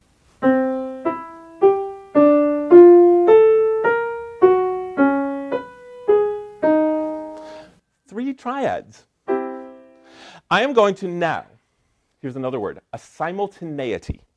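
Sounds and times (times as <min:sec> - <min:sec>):
twelve-tone row played as struck notes: 0:00.4 - 0:07.6, 0:09.3 - 0:10.1
speech: 0:08.4 - 0:09.1, 0:10.5 - 0:11.5, 0:12.2 - 0:14.3.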